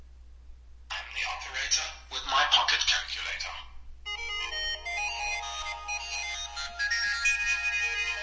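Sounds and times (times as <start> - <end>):
faint low hum: 0.0 - 6.8
speech: 1.3 - 3.8
custom phone ringtone melody: 4.1 - 8.2.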